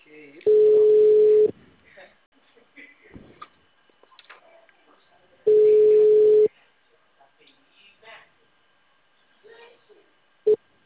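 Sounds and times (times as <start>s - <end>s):
telephone tone beeps after a dropped call: 0.5s - 1.5s, 5.5s - 6.5s.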